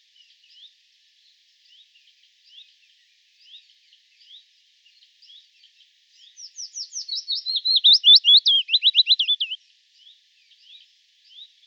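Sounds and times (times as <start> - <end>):
willow warbler singing: 6.2 - 9.6.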